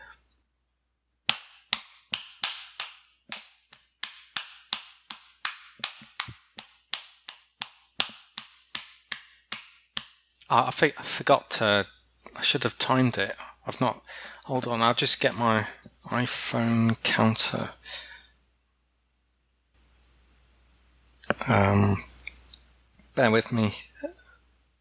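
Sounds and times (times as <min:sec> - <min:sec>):
hand clapping: 0:01.2 - 0:10.3
speech: 0:10.5 - 0:18.1, 0:21.5 - 0:22.1, 0:23.2 - 0:23.9.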